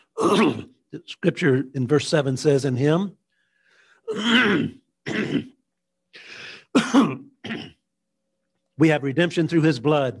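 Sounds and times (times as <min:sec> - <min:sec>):
person coughing with a cough drop: 0:00.2 - 0:00.7, 0:04.1 - 0:05.6, 0:06.6 - 0:07.8
speech: 0:00.2 - 0:03.2, 0:04.1 - 0:05.6, 0:06.2 - 0:07.7, 0:08.8 - 0:10.1
throat clearing: 0:04.1 - 0:05.6, 0:06.7 - 0:07.8.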